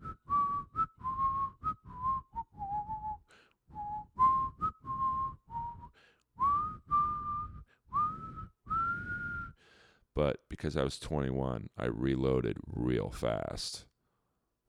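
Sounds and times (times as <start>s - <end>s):
person whistling a simple tune: 0.0s - 9.6s
short breaths between whistled phrases: 3.2s - 3.8s, 5.7s - 10.1s, 14.0s - 14.6s
speech: 10.2s - 13.9s.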